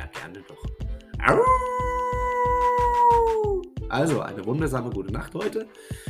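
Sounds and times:
speech: 0:00.3 - 0:01.5, 0:04.0 - 0:06.0
soft regular low thumping beat: 0:00.7 - 0:05.4
person imitating a wolf howl: 0:01.2 - 0:03.7.

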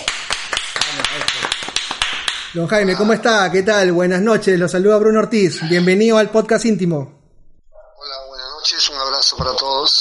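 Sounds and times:
applause: 0:00.0 - 0:02.5
speech: 0:02.5 - 0:07.2.

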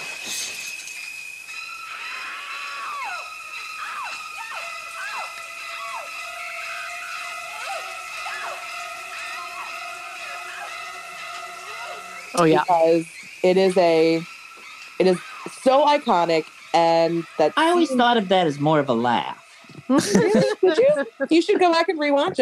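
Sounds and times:
sustained screeching tones: 0:00.0 - 0:22.4
woman screaming in a horror film shower scene: 0:02.0 - 0:12.2
speech: 0:12.4 - 0:14.3, 0:15.0 - 0:22.4
laughter: 0:19.6 - 0:22.4.

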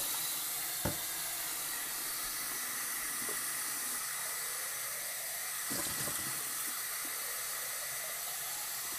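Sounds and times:
tap water running into a sink filling dishes: 0:00.0 - 0:08.9
dishes clinking as they are set down: 0:05.7 - 0:06.5.

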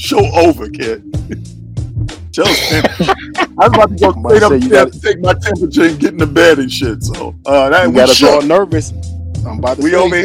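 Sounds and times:
speech: 0:00.0 - 0:10.2
person coughing: 0:02.4 - 0:03.3
laughter: 0:02.4 - 0:06.2.

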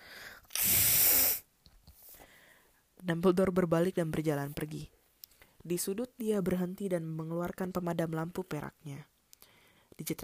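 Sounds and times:
nose blowing: 0:00.5 - 0:01.5
speech: 0:03.0 - 0:05.0, 0:05.6 - 0:09.1, 0:10.0 - 0:10.2.

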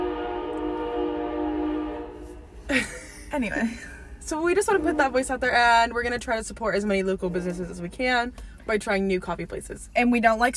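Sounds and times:
passing train horn blaring: 0:00.0 - 0:02.6, 0:04.5 - 0:05.4
speech: 0:02.7 - 0:10.5.

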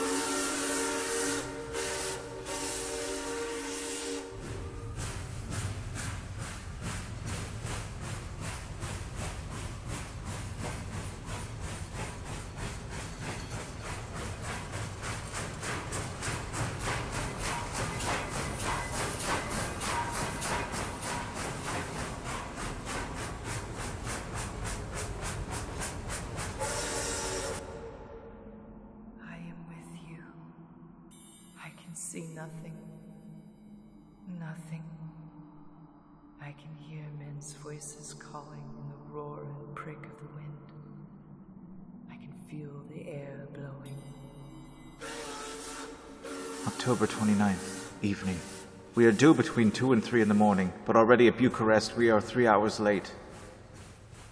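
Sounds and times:
long loud steam train whistle: 0:00.0 - 0:04.9, 0:26.6 - 0:28.2, 0:45.0 - 0:48.9
steam train chugging with rhythmic chuffing: 0:00.0 - 0:27.9, 0:43.9 - 0:50.8
speech: 0:36.5 - 0:40.7, 0:42.5 - 0:44.1, 0:46.6 - 0:53.2.

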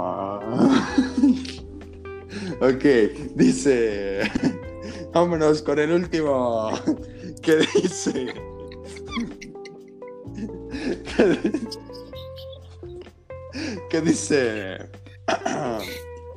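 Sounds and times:
laughter: 0:00.5 - 0:01.6, 0:04.2 - 0:04.7, 0:06.7 - 0:16.0
speech: 0:02.6 - 0:04.6, 0:05.2 - 0:08.5, 0:11.2 - 0:11.8, 0:14.0 - 0:14.9
squirrel monkey calling with high squeaky chirps and peeps: 0:08.4 - 0:09.9, 0:11.6 - 0:13.1, 0:15.8 - 0:16.0.

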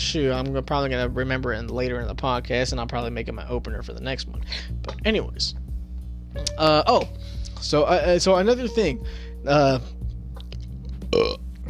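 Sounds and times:
low hum: 0:00.0 - 0:11.6
speech: 0:00.1 - 0:05.6, 0:06.3 - 0:10.0, 0:11.2 - 0:11.6
man burping: 0:11.1 - 0:11.6.

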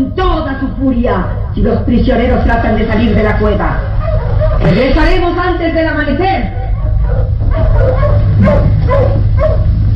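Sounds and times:
speech: 0:00.0 - 0:06.6
low rumbling drone: 0:00.0 - 0:09.9
wolves barking: 0:00.8 - 0:05.3, 0:06.1 - 0:09.8.

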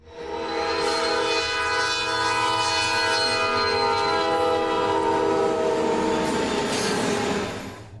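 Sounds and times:
freight train roaring past: 0:00.0 - 0:07.9
droning horn-like tone: 0:00.1 - 0:06.4.

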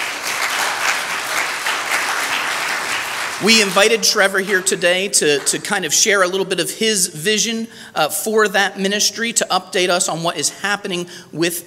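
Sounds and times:
audience applauding: 0:00.0 - 0:05.5
speech: 0:03.4 - 0:11.6.

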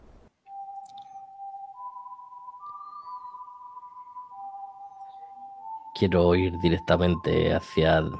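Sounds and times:
faint hiss: 0:00.0 - 0:08.1
steady high whistling in a forest: 0:00.5 - 0:08.1
speech: 0:06.0 - 0:08.1.

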